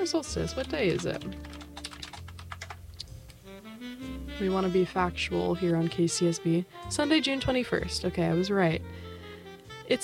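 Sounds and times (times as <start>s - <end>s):
speech: 0.0s - 1.6s, 4.4s - 9.0s, 9.9s - 10.0s
rapid typing on a computer keyboard: 0.6s - 2.8s.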